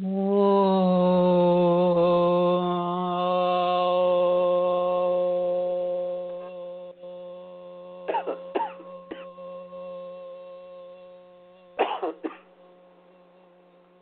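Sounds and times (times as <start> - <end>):
droning musical tone: 0.0 - 14.0
throat clearing: 8.1 - 9.3, 11.8 - 12.5
coughing: 8.1 - 9.4, 11.8 - 12.5.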